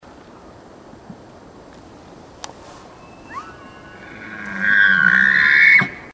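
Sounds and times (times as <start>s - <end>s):
elk bugling with lost voice: 2.6s - 6.1s.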